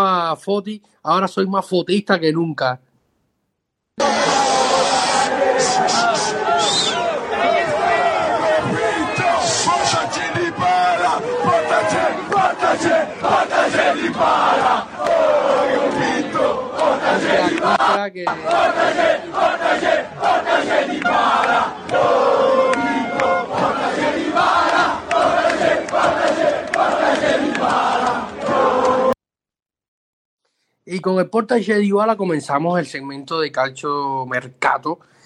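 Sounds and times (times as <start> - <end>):
speech: 0.3 - 2.8, 17.0 - 29.1, 30.9 - 35.1
large crowd of football fans singing a rhythmic chant: 4.0 - 29.2.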